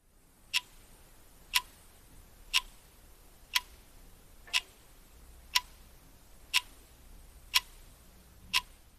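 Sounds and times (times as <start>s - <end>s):
faint hiss: 0.0s - 8.9s
bedside alarm clock ticking: 0.5s - 0.7s, 1.5s - 1.8s, 2.5s - 2.8s, 3.5s - 3.8s, 5.5s - 5.8s, 6.5s - 6.8s, 7.5s - 7.8s, 8.5s - 8.8s.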